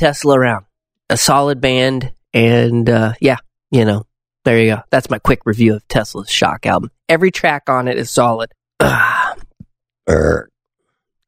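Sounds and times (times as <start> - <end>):
speech: 0.0 - 9.2, 10.1 - 10.5
loud gravelly and deep resonant burps: 8.8 - 10.6.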